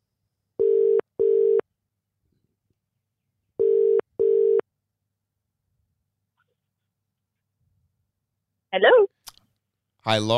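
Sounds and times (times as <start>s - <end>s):
telephone ringback tone: 0.6s - 1.6s, 3.6s - 4.6s
speech: 8.7s - 9.0s, 10.0s - 10.3s.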